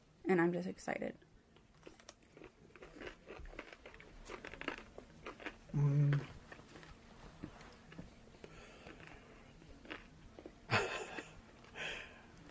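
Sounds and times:
speech: 0.3s - 1.3s, 5.8s - 6.3s
crunchy biting and chewing of a garlic pickle: 1.7s - 7.0s, 7.6s - 11.4s.

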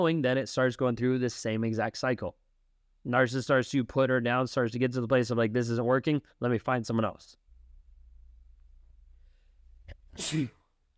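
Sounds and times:
speech: 0.0s - 2.4s, 3.0s - 7.4s, 10.2s - 10.6s
low steady hum: 7.4s - 10.2s
loud sneeze: 10.1s - 10.7s.

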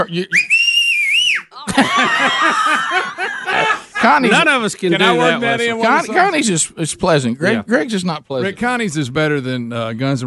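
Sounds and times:
speech: 0.0s - 0.5s, 1.8s - 10.2s
loud piercing human whistle: 0.3s - 1.6s
laughter: 1.5s - 6.4s.

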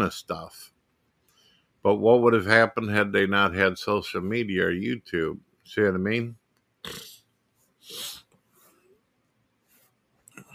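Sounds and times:
speech: 0.0s - 0.8s, 1.8s - 7.2s, 7.9s - 8.2s
congested sniffs through a stuffy nose: 7.7s - 8.8s.

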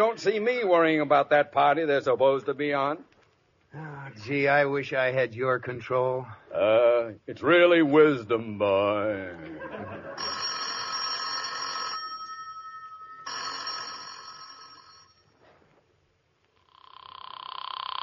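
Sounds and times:
speech: 0.0s - 3.1s, 3.7s - 10.4s
laughter: 9.3s - 10.4s
telephone bell ringing: 10.0s - 15.4s.

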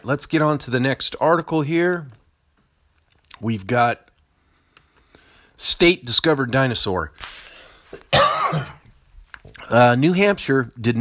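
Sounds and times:
speech: 0.0s - 2.2s, 3.4s - 4.1s, 5.6s - 8.8s, 9.7s - 10.9s
faint breathing: 4.3s - 5.6s, 7.3s - 8.1s
person coughing: 8.0s - 8.9s
throat clearing: 8.0s - 8.9s.

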